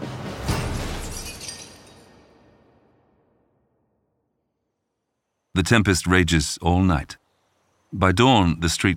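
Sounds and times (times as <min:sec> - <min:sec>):
brick smashing window glass: 0:00.5 - 0:02.2
glass shards tinkling: 0:00.7 - 0:02.1
speech: 0:05.6 - 0:07.2, 0:07.9 - 0:08.9.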